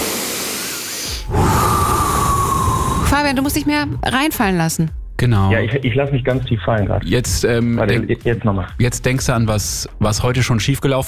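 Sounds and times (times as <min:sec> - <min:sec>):
person breathing deeply: 0:00.4 - 0:03.8
speech: 0:03.1 - 0:11.0.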